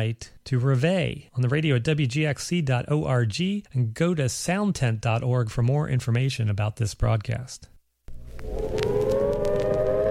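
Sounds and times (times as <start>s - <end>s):
speech: 0.0s - 7.7s
civil defense nuclear attack warning siren wailing: 8.3s - 10.0s.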